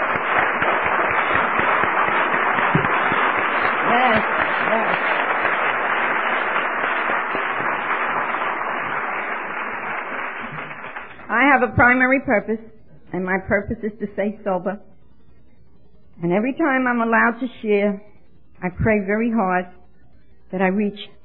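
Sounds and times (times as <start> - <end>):
large convention audience applauding: 0.0 - 11.9
speech: 11.6 - 14.9, 16.2 - 19.8, 20.5 - 21.2.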